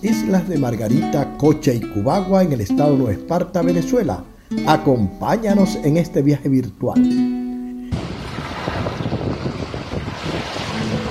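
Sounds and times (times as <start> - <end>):
speech: 0.0 - 7.3
strong wind buffeting the microphone on Playa El Yaque in Nueva Esparta, Venezuela: 7.9 - 11.0
surf washing along Playa El Yaque beach in Nueva Esparta, Venezuela: 7.9 - 11.0.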